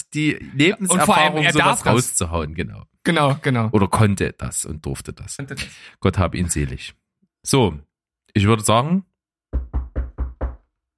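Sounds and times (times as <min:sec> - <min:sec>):
speech: 0:00.1 - 0:09.7
knocking on a door: 0:09.5 - 0:10.7.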